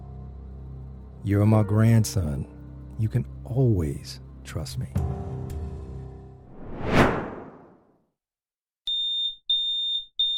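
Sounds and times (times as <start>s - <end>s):
speech: 1.2s - 5.2s
whooshing swell: 6.5s - 7.7s
smoke alarm beeping with a shrill piercing tone: 8.9s - 10.3s.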